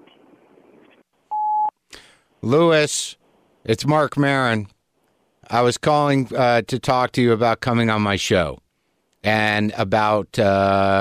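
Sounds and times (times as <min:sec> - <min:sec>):
electronic voicemail beep: 0:01.3 - 0:01.7
speech: 0:02.4 - 0:04.8, 0:05.5 - 0:08.6, 0:09.2 - 0:11.0.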